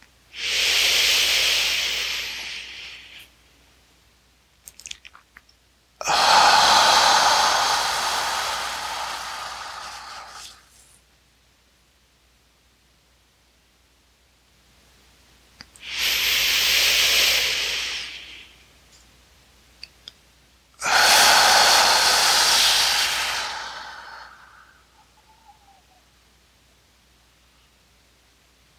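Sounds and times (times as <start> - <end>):
slow deep breathing during a guided belly-breathing exercise: 0.4 - 3.3, 6.0 - 10.7, 15.8 - 18.6, 20.8 - 26.0.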